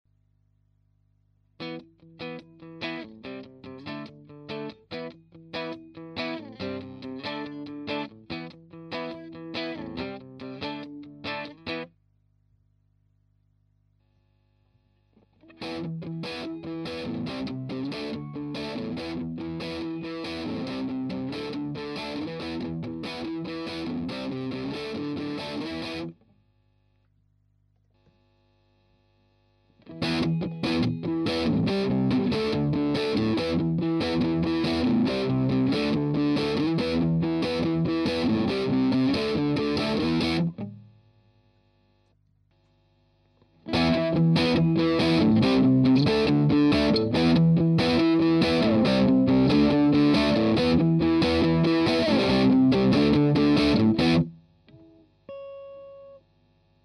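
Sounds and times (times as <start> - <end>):
electric guitar through modified distortion pedal and valve amplifier at low volume: 1.6 - 11.9, 15.2 - 26.2, 29.8 - 40.8, 43.6 - 56.2.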